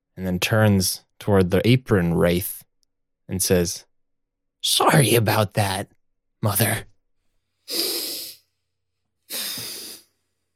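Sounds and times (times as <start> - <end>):
speech: 0.2 - 2.7, 3.3 - 3.9, 4.6 - 6.9, 7.7 - 8.0
person taking a big breath: 7.4 - 8.6, 9.3 - 10.5.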